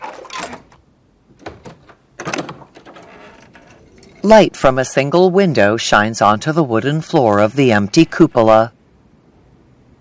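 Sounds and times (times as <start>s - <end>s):
door latch clacking up: 0.0s - 4.2s
door pushed open with a scraping rattle: 0.0s - 4.3s
speech: 4.2s - 8.8s.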